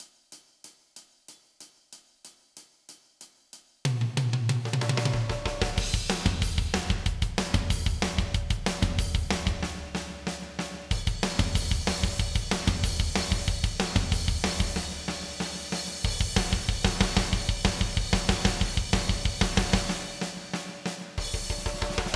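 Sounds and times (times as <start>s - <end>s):
80s drums: 0.0s - 22.1s.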